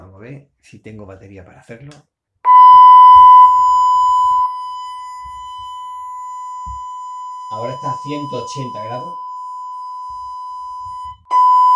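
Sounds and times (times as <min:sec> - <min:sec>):
speech: 0:00.2 - 0:02.1, 0:07.5 - 0:09.2
loud 1 kHz sine test tone: 0:02.5 - 0:11.7.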